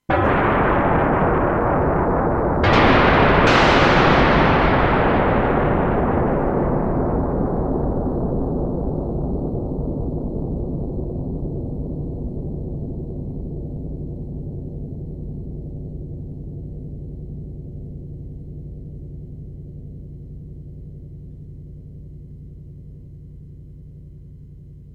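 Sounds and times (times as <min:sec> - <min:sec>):
thunder: 0:00.0 - 0:19.0.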